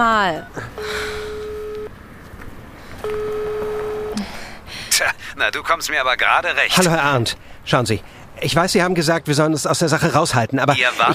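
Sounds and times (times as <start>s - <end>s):
speech: 0.0s - 1.0s, 5.0s - 11.1s
faint noise: 0.0s - 11.1s
mobile phone dialing tones on a street outside a hotel: 0.4s - 2.0s, 3.0s - 4.3s.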